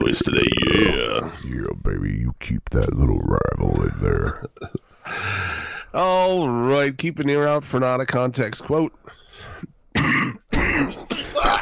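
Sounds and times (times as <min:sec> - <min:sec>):
speech: 0:00.0 - 0:09.2, 0:10.0 - 0:11.0
person clearing throat: 0:10.0 - 0:11.6
person coughing: 0:10.0 - 0:11.6.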